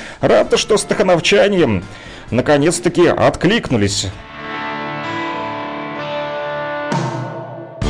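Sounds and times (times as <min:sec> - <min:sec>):
speech: 0:00.2 - 0:04.3
thick distorted guitar chords: 0:00.8 - 0:07.8
rock band playing: 0:04.2 - 0:07.8.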